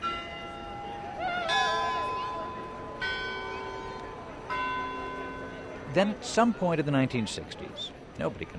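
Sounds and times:
large department store tower bells ringing a chime: 0:00.0 - 0:06.1
speech: 0:06.0 - 0:08.5.

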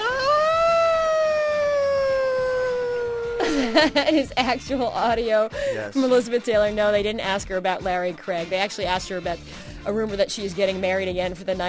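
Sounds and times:
woman howling like a siren: 0:00.0 - 0:03.4
speech: 0:03.5 - 0:11.6.

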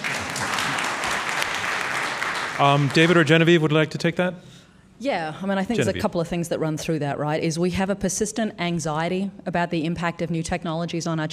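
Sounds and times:
audience applause: 0:00.0 - 0:03.7
speech: 0:02.6 - 0:11.3.

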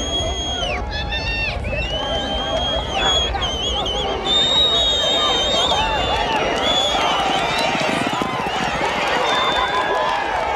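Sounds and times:
shrill whistles from the crowd: 0:00.0 - 0:10.1
excited crowd shouting and cheering at a horse race: 0:00.0 - 0:10.5
hoofbeats of quarter horses galloping in a race: 0:06.1 - 0:10.5.

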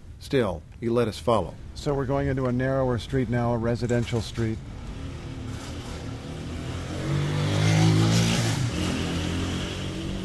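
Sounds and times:
speech: 0:00.2 - 0:04.8
motorcycle engine passing on a narrow residential street: 0:04.7 - 0:10.2.

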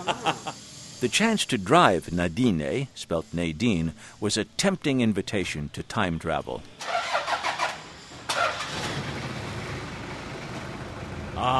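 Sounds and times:
laughter: 0:00.0 - 0:00.6
speech: 0:00.0 - 0:07.0, 0:11.4 - 0:11.5
Toyota engine in a 1955 Chevy Bel Air starting and idling: 0:06.8 - 0:11.4.

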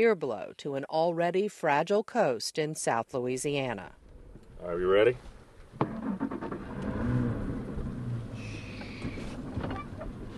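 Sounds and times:
speech: 0:00.0 - 0:04.0, 0:04.6 - 0:06.3
wind: 0:00.0 - 0:10.3
water noise: 0:05.4 - 0:10.3
outboard motor of a center console bay boat droning: 0:05.8 - 0:10.3.

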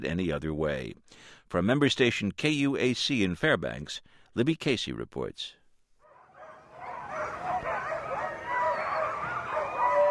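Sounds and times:
speech: 0:00.0 - 0:05.6
14-dog sled team barking and yipping on the Yukon Quest Trail: 0:06.1 - 0:10.0.

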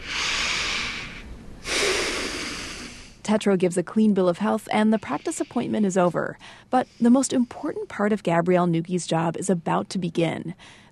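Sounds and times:
deep breathing by a patient during a physical exam: 0:00.0 - 0:03.2, 0:04.8 - 0:07.9, 0:10.6 - 0:10.8
speech: 0:03.3 - 0:10.8.

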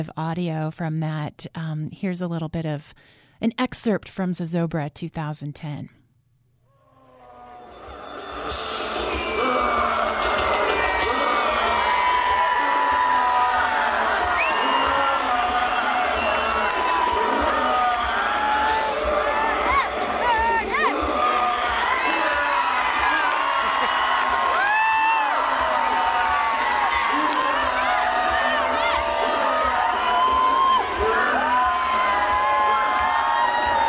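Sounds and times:
speech: 0:00.0 - 0:06.0
large outdoor festival crowd roaring and cheering: 0:06.9 - 0:33.8.

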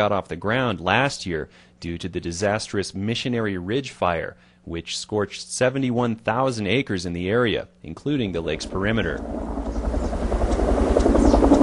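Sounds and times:
speech: 0:00.0 - 0:09.7
helicopters over a lake fighting a wildfire with rotor drone and engine rush: 0:08.3 - 0:11.6.

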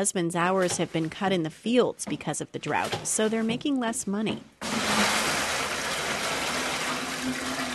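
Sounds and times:
speech: 0:00.0 - 0:05.2
water being scooped and poured into a bucket: 0:04.6 - 0:07.7.

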